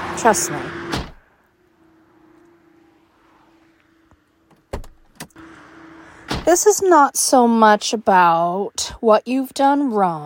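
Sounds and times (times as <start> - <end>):
police car power window motor whining: 0.0 - 6.6
low interior rumble of a police car: 0.0 - 7.7
speech: 0.2 - 0.8, 6.5 - 10.2
police car door thumps as someone gets into the back: 4.5 - 5.4, 6.3 - 6.5.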